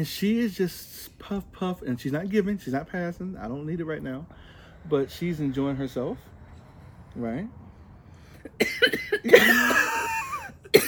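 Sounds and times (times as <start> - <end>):
speech: 0.0 - 6.3, 7.2 - 7.6, 8.5 - 10.8
person coughing: 8.5 - 10.8.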